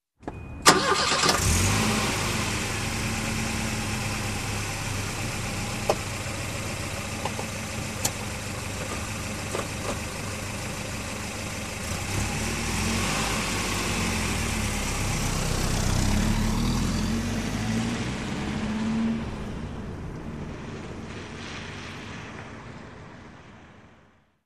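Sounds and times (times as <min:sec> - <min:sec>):
engine starting: 0:00.6 - 0:02.7
vehicle driving away: 0:00.6 - 0:23.7.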